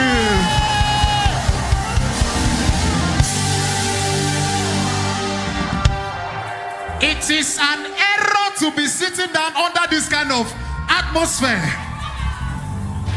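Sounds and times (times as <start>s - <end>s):
rhythmic thumps: 0.0s - 7.3s
crowd screaming and cheering: 0.0s - 13.1s
speech: 8.6s - 11.9s.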